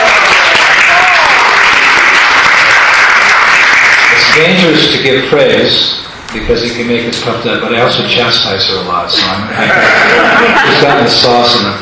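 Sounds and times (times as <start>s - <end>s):
room full of people applauding: 0.0s - 4.7s
speech: 4.4s - 11.8s
laughter: 9.1s - 11.7s.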